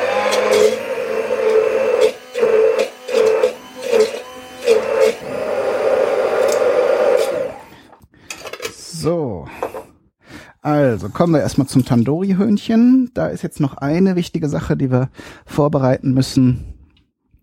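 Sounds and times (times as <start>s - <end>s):
electric mixer pureeing ginger-garlic spice mixture: 0.0s - 7.9s
speech: 11.0s - 16.7s.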